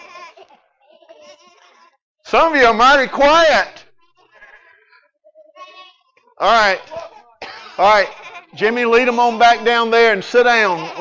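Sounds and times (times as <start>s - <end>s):
children imitating sheep bleating: 0.0s - 2.0s, 4.2s - 10.9s
speech: 2.3s - 3.8s, 6.4s - 7.0s, 7.8s - 10.9s.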